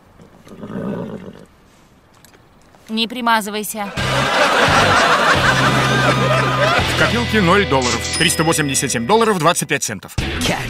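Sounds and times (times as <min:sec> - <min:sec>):
horse neighing: 0:00.4 - 0:01.5
speech: 0:02.9 - 0:10.6
laughter: 0:03.8 - 0:08.1.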